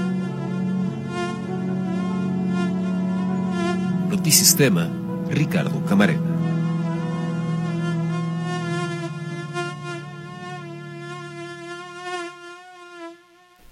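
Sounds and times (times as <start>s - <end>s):
mosquito buzzing: 0.0s - 13.7s
speech: 4.1s - 6.3s.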